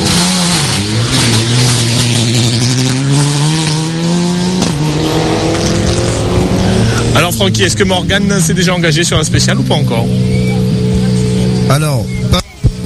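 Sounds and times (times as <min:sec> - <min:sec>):
rally car engine roaring and revving through gear changes: 0:00.0 - 0:12.8
speech: 0:07.4 - 0:10.5, 0:11.7 - 0:12.4.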